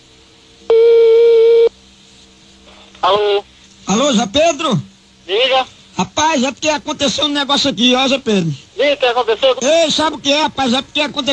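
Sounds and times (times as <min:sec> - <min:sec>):
faint telephone line hiss: 0:00.0 - 0:11.3
telephone ringing tone on an outgoing call: 0:00.7 - 0:01.7
speech: 0:03.1 - 0:11.3.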